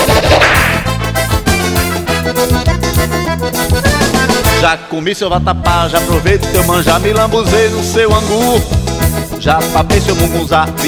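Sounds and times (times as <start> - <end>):
whip crack: 0.0 - 1.2
accordion-driven forró groove with bass and percussion: 0.0 - 10.8
speech: 4.7 - 10.8.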